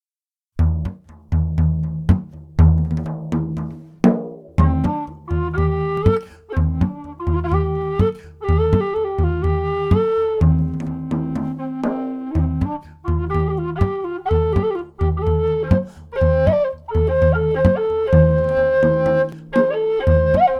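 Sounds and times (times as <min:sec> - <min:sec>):
drum: 0:00.6 - 0:20.4
whistle: 0:04.6 - 0:20.5.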